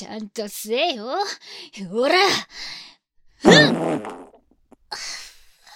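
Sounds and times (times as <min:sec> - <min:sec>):
speech: 0:00.0 - 0:04.3
squeaky buzzy farts from a person with an upset stomach passing gas in an office: 0:03.4 - 0:04.4.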